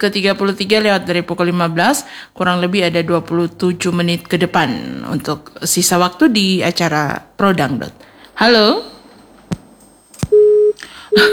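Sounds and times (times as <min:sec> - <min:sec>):
speech: 0:00.0 - 0:08.9, 0:11.2 - 0:11.3
phone busy tone: 0:10.2 - 0:11.3.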